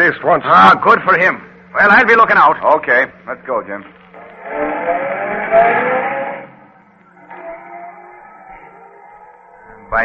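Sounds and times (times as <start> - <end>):
speech: 0.1 - 6.0
car engine roaring past fast in a city street: 4.4 - 6.7.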